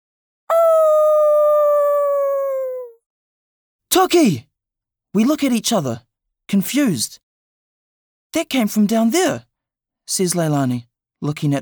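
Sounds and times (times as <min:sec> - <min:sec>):
long loud dog howl: 0:00.5 - 0:03.0
speech: 0:03.9 - 0:04.5, 0:05.2 - 0:07.2, 0:08.3 - 0:09.5, 0:10.1 - 0:11.6.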